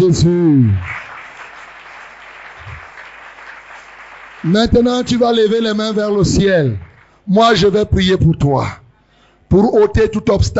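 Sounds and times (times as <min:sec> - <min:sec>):
speech: 0:00.0 - 0:01.0, 0:04.4 - 0:08.8, 0:09.5 - 0:10.5
crowd applauding in acclaim: 0:00.6 - 0:07.2.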